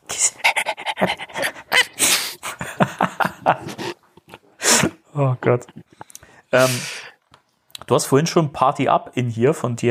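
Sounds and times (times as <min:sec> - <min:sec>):
person imitating a dog panting: 0:00.0 - 0:02.6
laughter: 0:00.8 - 0:04.4
speech: 0:05.2 - 0:05.8, 0:06.5 - 0:06.9, 0:07.9 - 0:09.8.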